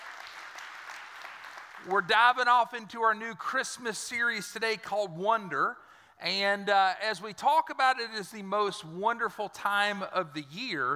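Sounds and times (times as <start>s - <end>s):
church audience applause during a morning service: 0.0s - 1.9s
speech: 1.8s - 10.9s.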